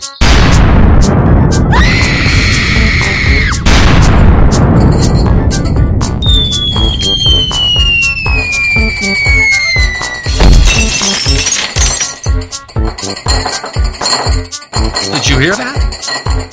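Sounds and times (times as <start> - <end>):
grenade blast: 0.2 - 2.5, 3.5 - 10.9
falling whistle: 6.2 - 10.4
window glass shattering after a grenade blast: 10.3 - 12.4
glass fragments clinking: 10.3 - 16.5.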